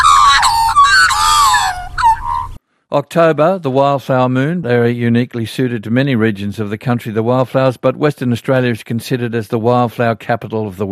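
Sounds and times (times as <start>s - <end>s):
Australian magpies carolling in a chorus: 0.0s - 2.6s
speech: 2.9s - 10.9s.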